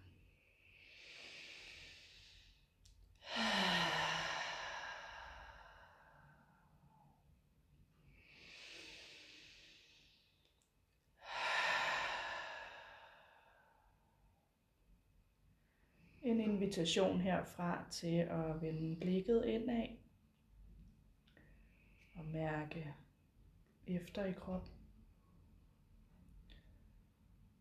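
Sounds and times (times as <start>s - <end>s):
slow deep breathing with sighing exhales during guided meditation: 0.0s - 7.2s, 7.9s - 10.5s, 11.2s - 14.2s
speech: 16.4s - 20.0s, 22.3s - 23.0s, 23.9s - 24.8s.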